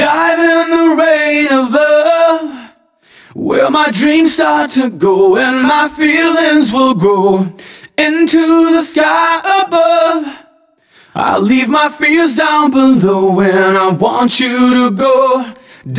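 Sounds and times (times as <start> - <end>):
alternative rock vocal chorus at 120 BPM: 0.0 - 15.9.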